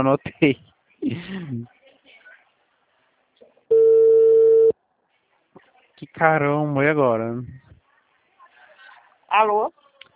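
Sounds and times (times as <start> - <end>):
speech: 0.0 - 1.8, 6.0 - 7.6, 9.3 - 9.8
telephone busy tone after a dropped call: 3.7 - 4.7.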